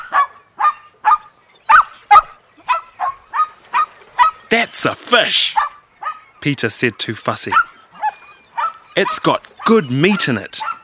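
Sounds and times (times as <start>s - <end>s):
dog barking at a freshly caught fish: 0.0s - 4.4s, 5.5s - 6.3s, 7.5s - 10.8s
speech: 4.5s - 5.6s, 6.4s - 7.7s, 9.0s - 10.7s.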